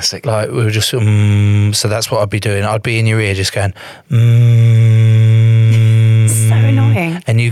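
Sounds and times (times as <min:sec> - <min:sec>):
speech: 0:00.0 - 0:05.2
person humming one steady low tone: 0:04.1 - 0:07.1.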